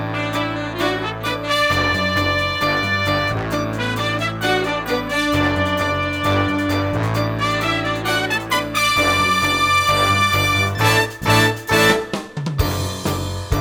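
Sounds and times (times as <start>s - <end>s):
quarter note accompaniment: 0.2s - 13.4s.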